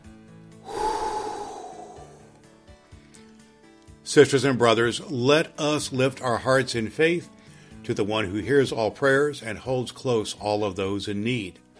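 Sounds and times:
deep breath taken before a prayer: 0.6 - 2.5, 7.4 - 7.8
speech: 4.1 - 11.6.

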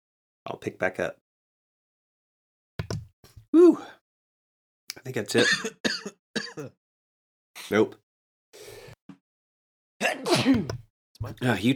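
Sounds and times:
speech: 0.5 - 1.2, 3.6 - 4.0, 5.0 - 6.8, 7.7 - 8.0, 10.1 - 11.7
breathy inhale: 8.6 - 9.0
loud sneeze with a voiced wavering tail: 10.0 - 10.7.

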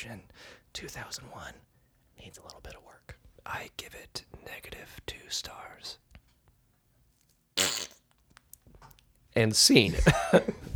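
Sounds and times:
speech: 0.0 - 6.1, 9.4 - 10.7
loud brassy fart: 7.6 - 8.0.

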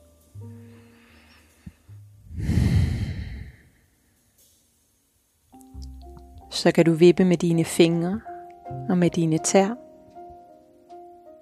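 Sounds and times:
quiet nasal inhale during a yoga session: 0.5 - 4.1
long loud breathy sighing exhale through the mouth: 2.3 - 3.8
speech: 6.6 - 9.8.

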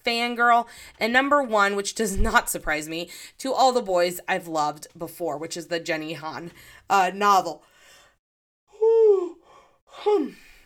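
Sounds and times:
speech: 0.0 - 7.7, 10.0 - 10.5
person yawning: 8.7 - 10.4.

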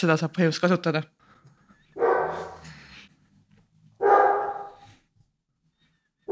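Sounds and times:
speech: 0.0 - 1.2
large dog barking: 2.0 - 2.7, 4.0 - 5.0.

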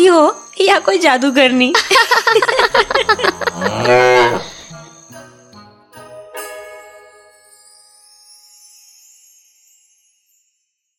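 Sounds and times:
speech: 0.0 - 4.5
laughter: 1.8 - 4.7
buffalo mooing: 2.7 - 4.7.

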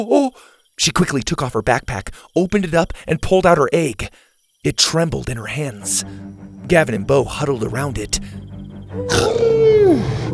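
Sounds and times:
speech: 0.0 - 10.3
dinosaur-like roar: 9.0 - 10.3.

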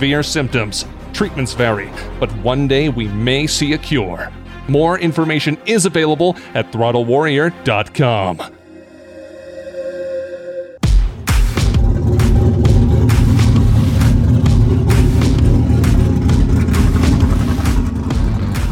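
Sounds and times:
speech: 0.0 - 8.6
Chevy Nova V8 engine with big choppy cam starting and idling: 11.1 - 18.7.

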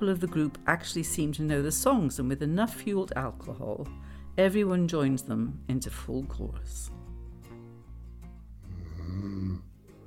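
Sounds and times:
speech: 0.0 - 7.0
person snoring while asleep: 8.6 - 10.0.

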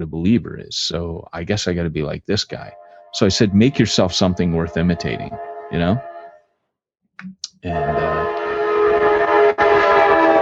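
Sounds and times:
speech: 0.0 - 6.1, 7.2 - 8.4
horn of a passing speed train from TJ to San Francisco: 2.6 - 6.5, 7.7 - 10.3.

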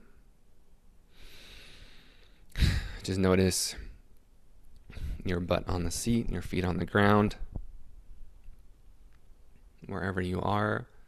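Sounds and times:
deep breath in and out during a guided relaxation exercise: 1.1 - 3.1, 4.9 - 5.3
speech: 3.1 - 3.8, 5.2 - 7.5, 9.9 - 10.9.

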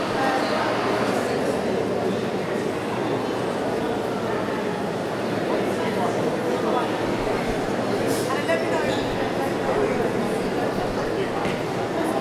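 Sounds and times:
busy city centre shopping mall during post-Christmas sales: 0.0 - 12.1.

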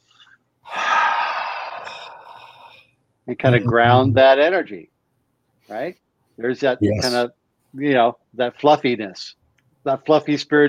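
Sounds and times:
long airy deep breath inhale during a grounding practice: 0.0 - 2.9
speech: 3.3 - 4.9, 5.7 - 10.6.

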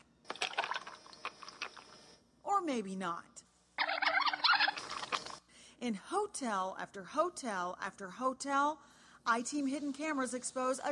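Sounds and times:
drink being poured: 0.3 - 2.0, 3.8 - 5.4
speech: 2.6 - 3.5, 5.8 - 10.8.

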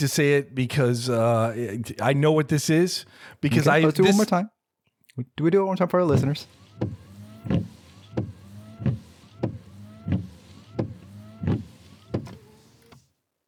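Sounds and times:
speech: 0.0 - 4.6, 5.2 - 8.3
car windshield wipers sweeping back and forth: 6.1 - 13.1.

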